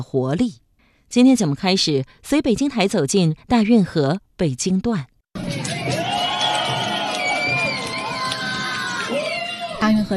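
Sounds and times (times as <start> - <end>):
speech: 0.0 - 5.1, 9.8 - 10.1
large crowd cheering and shouting at a dragon boat race on the Grand Canal: 5.4 - 10.1
high whoops and cries from crowd: 5.5 - 9.8.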